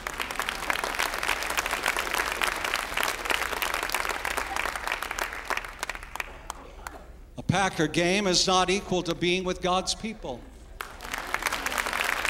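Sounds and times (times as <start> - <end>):
large group clapping energetically: 0.0 - 7.1, 10.8 - 12.2
speech: 7.6 - 10.5.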